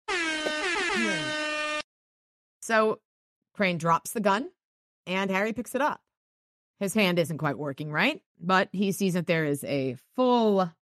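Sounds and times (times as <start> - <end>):
harsh brassy air horn blast: 0.0 - 1.9
speech: 2.7 - 3.0, 3.6 - 6.0, 6.8 - 10.8.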